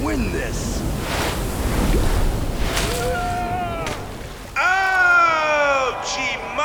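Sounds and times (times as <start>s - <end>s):
large ocean wave crashing, last wave of a competition: 0.0s - 5.5s
excited people shouting and whooping: 2.9s - 6.6s.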